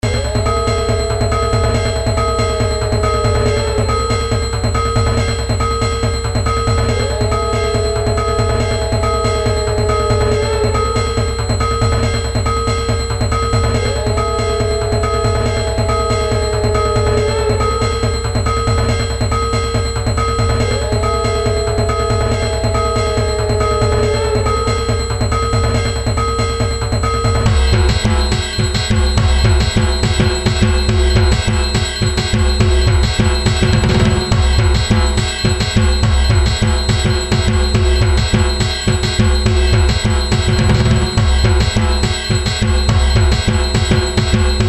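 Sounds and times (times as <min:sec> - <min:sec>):
dhak drum: 0:00.0 - 0:44.6.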